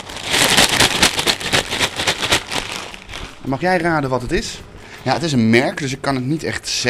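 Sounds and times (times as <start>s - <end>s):
bag of hat-shaped corn chips rustling: 0.0s - 3.7s
speech: 3.4s - 6.8s.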